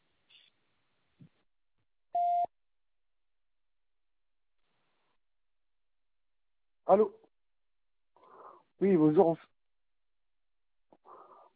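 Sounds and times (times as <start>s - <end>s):
voicemail beep: 2.2s - 2.5s
speech: 6.9s - 7.2s, 8.8s - 9.5s.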